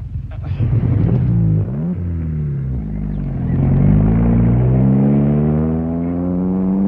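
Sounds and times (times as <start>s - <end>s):
car engine revving and pulling away down a hill: 0.4s - 6.8s.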